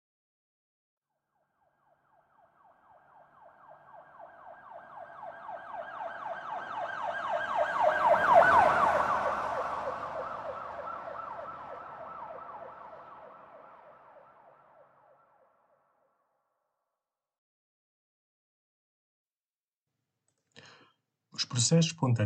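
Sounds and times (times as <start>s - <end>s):
distant emergency vehicle siren wailing: 1.4s - 15.8s
speech: 21.4s - 22.2s.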